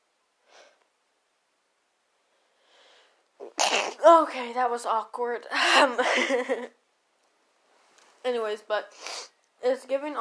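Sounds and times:
soft drawn-out breathy inhales: 0:02.4 - 0:03.2
short sharp sneeze: 0:03.4 - 0:04.0
speech: 0:04.0 - 0:06.8, 0:08.2 - 0:10.1.

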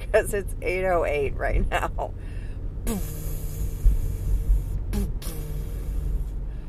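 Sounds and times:
speech: 0:00.1 - 0:02.2, 0:02.9 - 0:03.2
voice imitating Roland 808 drum machine boom: 0:02.8 - 0:06.4.

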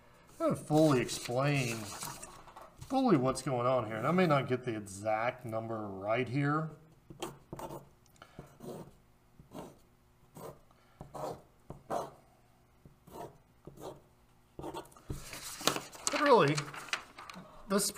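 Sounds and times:
speech: 0:00.4 - 0:02.2, 0:02.9 - 0:07.9, 0:16.3 - 0:16.7, 0:17.7 - 0:17.9
hand sketching a diagram with short scratching strokes: 0:00.6 - 0:02.3, 0:07.1 - 0:12.2, 0:13.0 - 0:14.0, 0:14.6 - 0:15.6.

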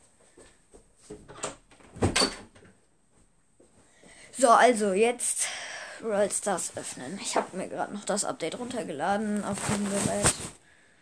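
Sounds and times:
speech: 0:04.4 - 0:10.6
shuffling and scraping movements: 0:06.1 - 0:10.6.

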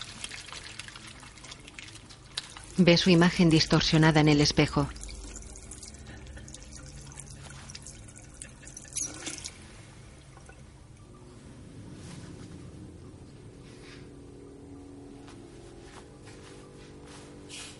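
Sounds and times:
water running from a tap into a sink in a restroom: 0:00.0 - 0:09.6
speech: 0:02.8 - 0:05.0.

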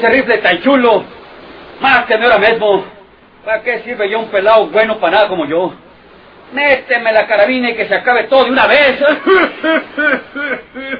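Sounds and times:
speech: 0:00.0 - 0:01.2, 0:01.8 - 0:05.8, 0:06.5 - 0:10.9
laughter: 0:09.0 - 0:10.9
coughing fit of harsh voiced coughs: 0:09.2 - 0:10.9.

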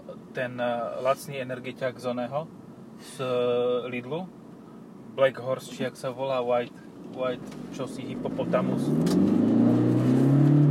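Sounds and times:
speech: 0:00.4 - 0:04.4, 0:05.2 - 0:09.5
car engine revving under acceleration: 0:07.4 - 0:10.6.

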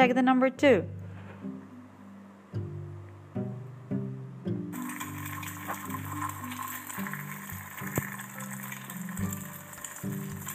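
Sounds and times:
speech: 0:00.0 - 0:01.0
pots and utensils clanking in a kitchen: 0:04.8 - 0:10.5.

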